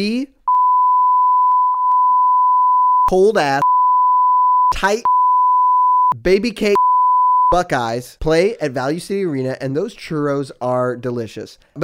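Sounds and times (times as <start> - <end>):
speech: 0.0 - 0.4, 3.1 - 3.6, 4.7 - 5.1, 6.1 - 6.8, 7.5 - 11.8
steady loud electronic censor beep tone: 0.5 - 6.2.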